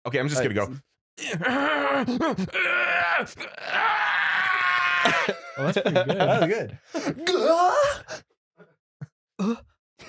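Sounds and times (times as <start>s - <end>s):
speech: 0.0s - 8.3s, 9.4s - 10.0s
voice imitating an anime-style scream: 1.3s - 5.7s, 7.2s - 8.1s
laughter: 5.0s - 6.8s.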